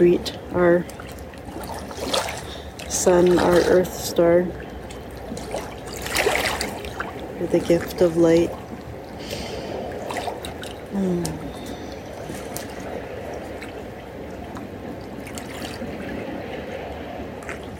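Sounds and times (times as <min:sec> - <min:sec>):
speech: 0:00.0 - 0:01.0, 0:02.9 - 0:04.6, 0:07.4 - 0:08.6, 0:11.0 - 0:11.4
continuous outdoor rushing water in the morning: 0:00.0 - 0:17.7.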